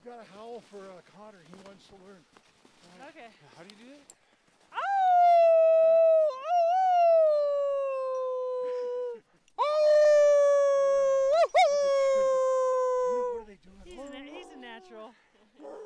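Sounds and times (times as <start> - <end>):
speech: 0.1 - 4.9
people imitating wolf howls: 4.8 - 13.5.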